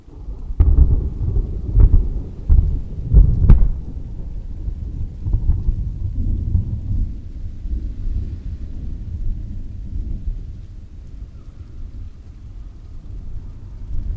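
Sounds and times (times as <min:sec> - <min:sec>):
heavy rain pouring through slats: 0:00.0 - 0:14.1
sharp cracks and thuds: 0:01.8 - 0:04.0.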